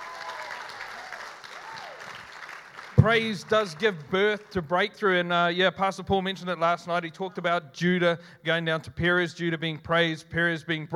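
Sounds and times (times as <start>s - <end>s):
dense steady audience applause: 0.0s - 4.6s
speech: 3.0s - 10.9s.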